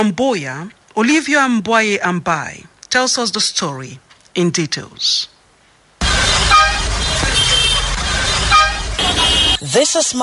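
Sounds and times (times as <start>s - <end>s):
speech: 0.0s - 5.3s, 9.6s - 10.2s
car horns honking at a busy bus station: 6.0s - 9.6s
steady rumble of engines in dense traffic: 6.0s - 9.6s.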